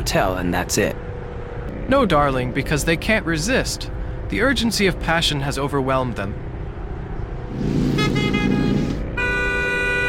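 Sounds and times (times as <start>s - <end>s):
low rumble of road and engine noise: 0.0s - 10.0s
speech: 0.1s - 1.1s, 1.9s - 6.5s
car horn honking: 7.6s - 10.0s.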